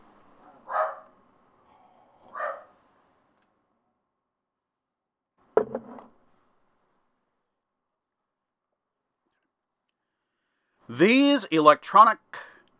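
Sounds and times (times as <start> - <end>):
dogs barking at passing postman: 0.5 - 1.1, 2.3 - 2.7
speech: 10.9 - 12.5.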